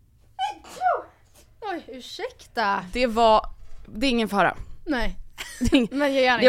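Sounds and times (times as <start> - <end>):
person sneezing: 0.4 - 1.5
speech: 1.9 - 6.4.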